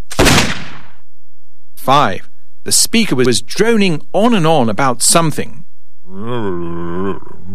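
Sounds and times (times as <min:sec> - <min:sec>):
shotgun blast: 0:00.1 - 0:01.0
speech: 0:01.9 - 0:07.5.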